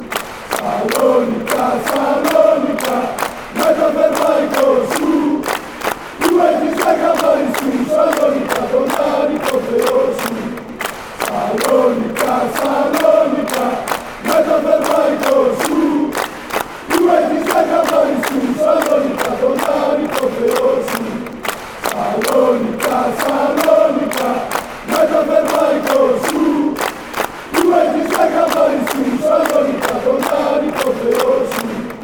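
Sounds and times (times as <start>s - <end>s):
person chanting: 0.6s - 5.5s, 6.2s - 10.6s, 11.2s - 26.9s, 27.5s - 32.0s.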